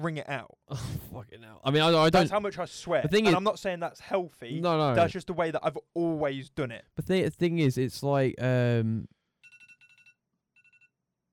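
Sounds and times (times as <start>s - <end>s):
speech: 0.0s - 9.2s
mobile phone ringtone with high-pitched trill: 9.4s - 11.0s.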